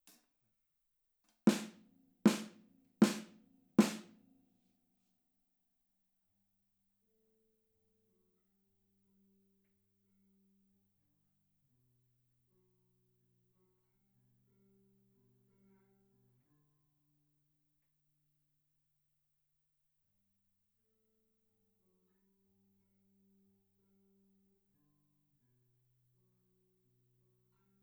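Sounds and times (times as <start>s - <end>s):
drums recorded with overhead stereo microphones: 1.5s - 4.1s.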